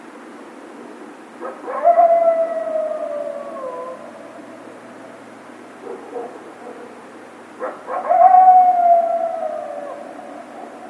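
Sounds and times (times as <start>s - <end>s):
coyote yelping and howling: 1.4s - 5.0s, 7.6s - 10.8s.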